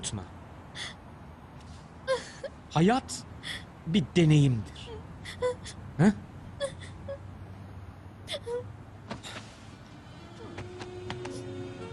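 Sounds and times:
speech: 0:00.0 - 0:01.0, 0:02.8 - 0:04.8, 0:05.4 - 0:06.2
person crying in soft broken whimpers and sobs: 0:02.1 - 0:02.6, 0:04.8 - 0:07.2, 0:08.3 - 0:08.7.

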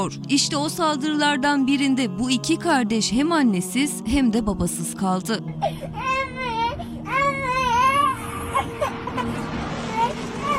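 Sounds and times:
speech: 0:00.0 - 0:06.3
small child crying in long wailing sobs: 0:05.6 - 0:10.5.

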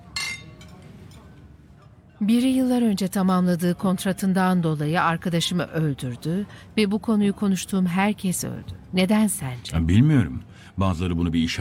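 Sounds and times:
glasses clinking in a toast: 0:00.0 - 0:01.4
speech: 0:02.2 - 0:11.5.

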